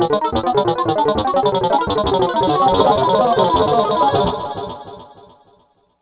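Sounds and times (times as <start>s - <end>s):
techno machine music: 0.2s - 4.6s.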